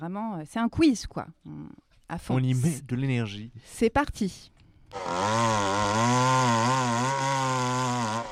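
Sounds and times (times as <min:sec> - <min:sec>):
speech: 0:00.0 - 0:06.8
chainsaw engine running: 0:04.9 - 0:08.2.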